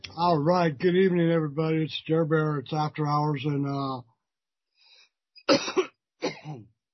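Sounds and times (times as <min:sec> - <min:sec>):
speech: 0:00.2 - 0:04.1, 0:05.5 - 0:05.9, 0:06.5 - 0:06.7
person coughing after a swallow of Jägermeister: 0:05.4 - 0:06.7.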